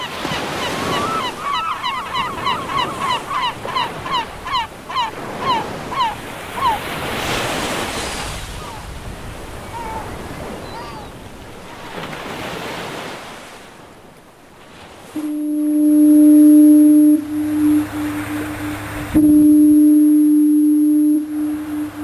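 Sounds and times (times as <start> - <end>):
ocean surf: 0.0 - 22.0
wind: 0.0 - 22.0
lighthouse foghorn blasts on the coast: 15.1 - 22.0.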